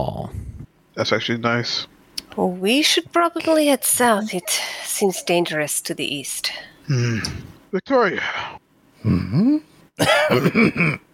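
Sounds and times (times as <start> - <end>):
speech: 1.0 - 11.0
person coughing: 10.0 - 11.1.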